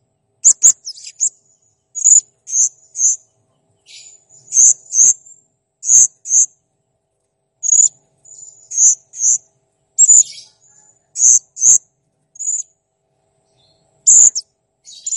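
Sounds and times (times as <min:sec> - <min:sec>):
blue-crowned hanging parrot high sharp squeaky chirps: 0:00.4 - 0:01.3, 0:03.9 - 0:05.2, 0:05.8 - 0:06.5, 0:07.6 - 0:09.4, 0:10.0 - 0:10.6, 0:11.2 - 0:11.8, 0:14.1 - 0:15.1.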